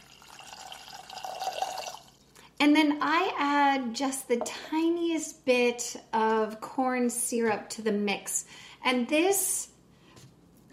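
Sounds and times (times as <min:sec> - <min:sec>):
water poured into a pot of granulated sugar to make simple syrup: 0:00.0 - 0:02.4
speech: 0:02.6 - 0:09.7.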